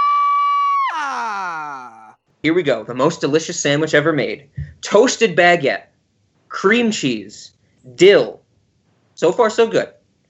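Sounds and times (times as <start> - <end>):
high-pitched scream cracking into a raspy wail: 0.0 - 2.2
speech: 2.4 - 5.9, 6.5 - 8.4, 9.2 - 10.0.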